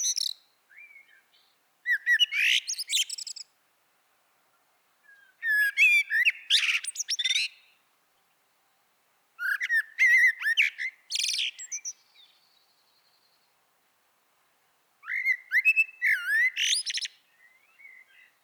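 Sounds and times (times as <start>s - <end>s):
Common blackbird fluty whistling with shrill twittering notes: 1.9s - 3.4s, 5.1s - 7.7s, 9.4s - 12.0s, 15.0s - 18.3s.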